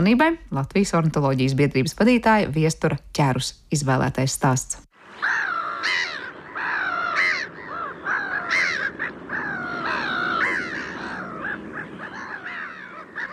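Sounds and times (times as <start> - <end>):
speech: 0.0 - 6.1
flock of black-headed gulls calling: 5.0 - 13.3.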